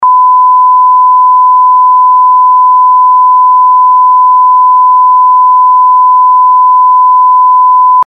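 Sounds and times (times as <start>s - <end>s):
long censor beep: 0.0s - 8.0s.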